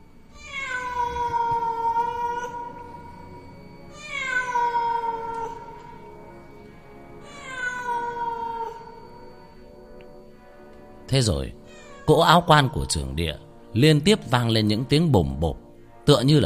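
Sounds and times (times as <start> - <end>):
feral cat yowling mournfully: 0.3 - 3.2, 3.9 - 5.9, 7.2 - 9.0, 11.6 - 13.2
speech: 11.1 - 16.4.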